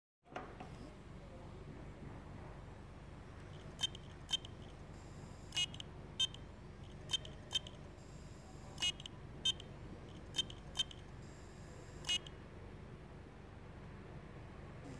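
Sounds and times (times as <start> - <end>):
heads motor of damaged Maxtor 2TB hard drive: 3.1 - 12.5.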